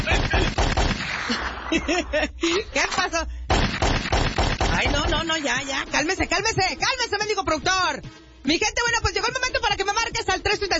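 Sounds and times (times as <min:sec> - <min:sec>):
laughter: 0:00.0 - 0:00.6, 0:01.2 - 0:02.8
rapid gunshot sound effects: 0:00.0 - 0:01.7, 0:03.5 - 0:06.4
speech: 0:01.8 - 0:03.4, 0:04.8 - 0:10.7.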